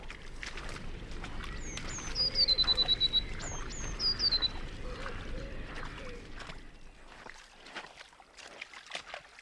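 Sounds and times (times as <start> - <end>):
steady wash of water: 0.0 - 9.4
blue tits calling: 1.2 - 7.1.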